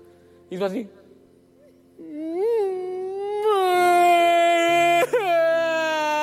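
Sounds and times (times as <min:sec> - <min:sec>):
speech: 0:00.5 - 0:01.0
voice imitating a boy's whimpering cry in a car: 0:01.6 - 0:06.2.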